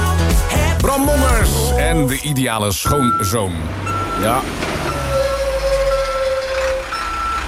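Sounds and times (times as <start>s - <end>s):
heavy truck engine rumbling while reversing: 0.6s - 7.4s
speech: 1.8s - 4.8s
truck reversing warning tone: 2.8s - 7.4s.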